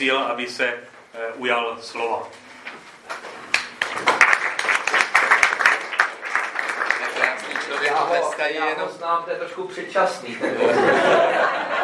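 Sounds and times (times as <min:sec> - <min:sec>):
speech: 0:00.0 - 0:02.4, 0:07.7 - 0:11.8
crowd applause for a parish priest: 0:03.5 - 0:08.5
laughter: 0:10.2 - 0:11.8.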